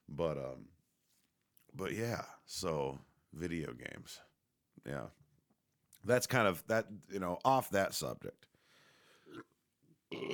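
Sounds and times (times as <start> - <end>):
speech: 0.2 - 0.8, 1.7 - 5.2, 6.0 - 8.5, 9.3 - 9.5, 10.1 - 10.3
throaty burp: 9.2 - 10.3.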